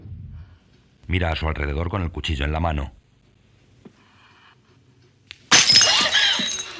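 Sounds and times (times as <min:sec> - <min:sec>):
speech: 0:01.2 - 0:03.0
thrown drinking glass shattering: 0:05.5 - 0:06.7.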